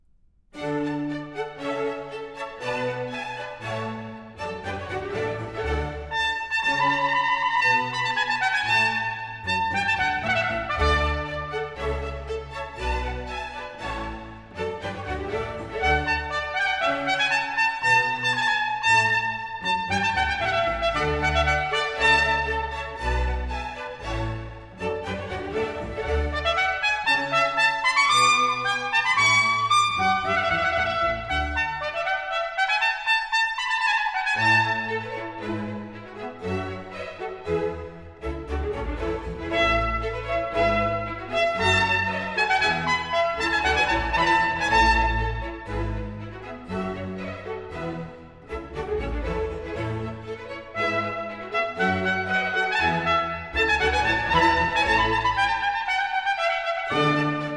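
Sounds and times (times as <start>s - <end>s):
strings playing: 0.6s - 57.5s
trumpet playing in a sonata: 5.5s - 11.9s, 15.8s - 23.5s, 25.8s - 35.1s, 39.4s - 46.0s, 50.8s - 57.5s.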